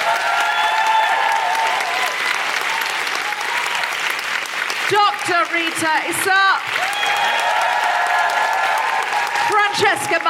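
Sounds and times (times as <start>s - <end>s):
faint whoops and tonal cheers: 0.0s - 4.1s, 6.7s - 10.2s
loud sustained applause from a large audience: 0.0s - 10.2s
speech: 5.5s - 7.5s, 9.8s - 10.2s.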